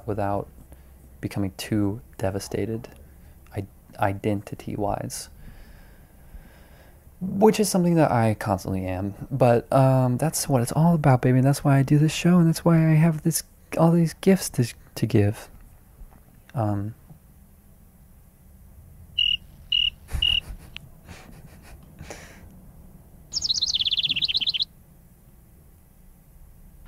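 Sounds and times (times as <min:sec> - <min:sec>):
speech: 0:00.0 - 0:00.6, 0:01.2 - 0:05.4, 0:07.2 - 0:15.5, 0:16.5 - 0:17.0
cricket chirping: 0:19.1 - 0:20.5, 0:23.3 - 0:24.7.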